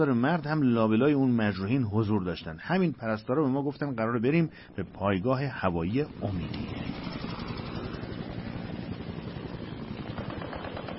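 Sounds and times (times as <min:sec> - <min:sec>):
speech: 0:00.0 - 0:07.2
Chinook helicopter rotor blades roaring: 0:00.0 - 0:10.9.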